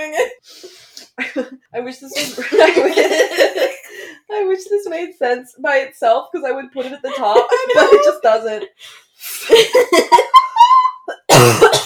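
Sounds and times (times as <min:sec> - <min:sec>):
speech: 0:01.4 - 0:03.3, 0:05.2 - 0:11.8
laughter: 0:02.2 - 0:04.0, 0:06.8 - 0:08.3, 0:09.4 - 0:11.2
person coughing: 0:11.3 - 0:11.8.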